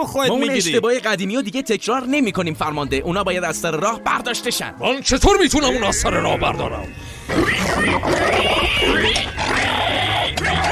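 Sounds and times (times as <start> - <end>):
speech: 0.0 - 9.8
big wild boar grunting and snorting: 7.2 - 10.7.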